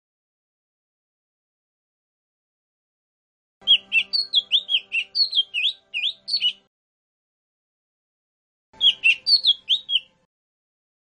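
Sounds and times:
Lesser green leafbird song of sweet slurred whistled notes: 0:03.6 - 0:06.7, 0:08.8 - 0:10.3.

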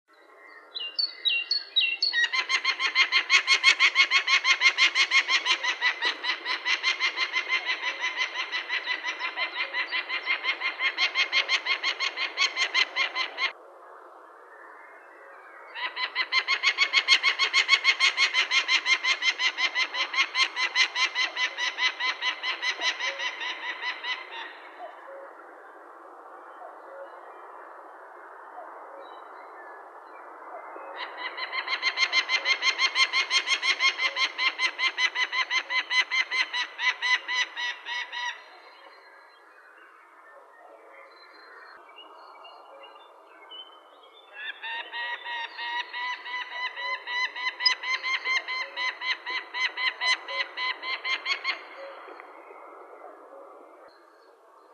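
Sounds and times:
peregrine falcon calling: 0:02.0 - 0:13.6, 0:15.8 - 0:25.3, 0:31.0 - 0:38.6, 0:44.4 - 0:52.2.

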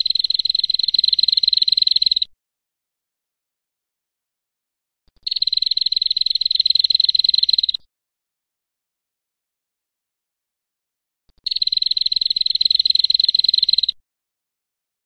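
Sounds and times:
female prinia buzzy high-pitched rattling trill: 0:00.0 - 0:02.3, 0:05.2 - 0:07.8, 0:11.4 - 0:14.0.

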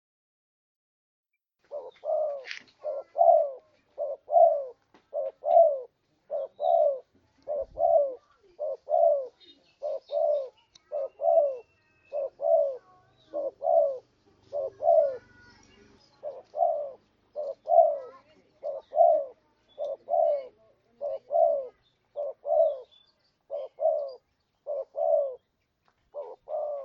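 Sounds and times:
spotted dove repeating two-part coos: 0:01.6 - 0:25.5, 0:26.1 - 0:26.8
soft bird chirps: 0:01.6 - 0:26.8.

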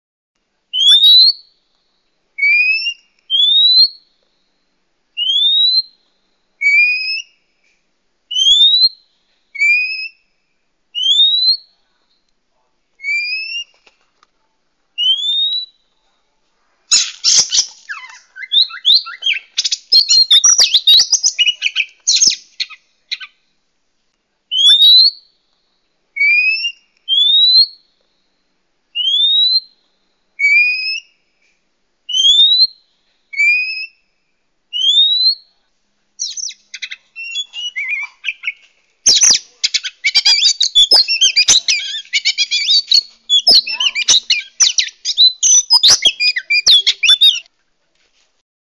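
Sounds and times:
oriental magpie-robin decoy song: 0:00.7 - 0:01.5, 0:02.4 - 0:04.1, 0:05.2 - 0:06.0, 0:06.6 - 0:07.4, 0:08.3 - 0:09.0, 0:13.0 - 0:13.7, 0:15.0 - 0:15.8, 0:16.9 - 0:23.4, 0:24.5 - 0:25.3, 0:26.2 - 0:27.9, 0:29.0 - 0:29.8, 0:30.4 - 0:31.2, 0:32.1 - 0:34.0, 0:34.7 - 0:35.5, 0:36.2 - 0:47.5.

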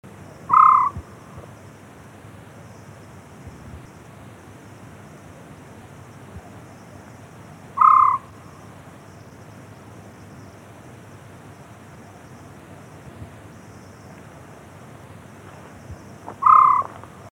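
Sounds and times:
Otus senegalensis calling: 0:00.4 - 0:01.6, 0:06.9 - 0:08.8, 0:15.9 - 0:17.2.

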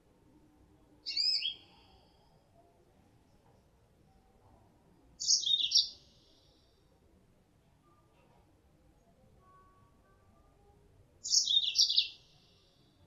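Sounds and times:
female Mozambique canary chirp: 0:01.0 - 0:01.7, 0:05.2 - 0:06.0, 0:11.2 - 0:12.2.

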